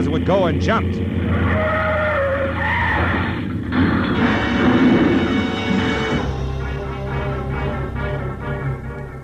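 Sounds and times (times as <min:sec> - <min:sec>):
speech: 0:00.0 - 0:01.8
grinding skid of a car: 0:00.0 - 0:09.2
roaring engines of a car and taxiing plane: 0:00.0 - 0:09.2
rumbling and rattling metal of settling wreckage: 0:00.0 - 0:09.2
heavy crunching impact of a car and a taxiing plane: 0:03.0 - 0:07.5.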